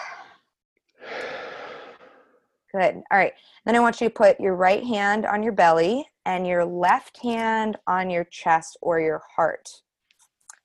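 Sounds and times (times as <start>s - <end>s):
deep breath in through the nose and out through the mouth: 0.0s - 2.4s
speech: 2.7s - 9.8s.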